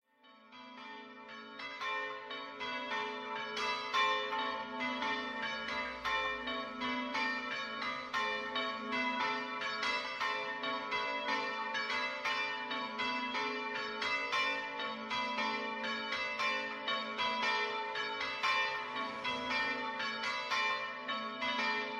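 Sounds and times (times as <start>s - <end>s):
church bells ringing in Villanova di San Giorgio: 0.2s - 21.9s.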